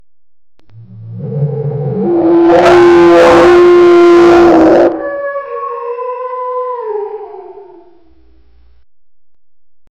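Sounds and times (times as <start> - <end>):
loud dinosaur roar bellow: 0.7 - 8.1.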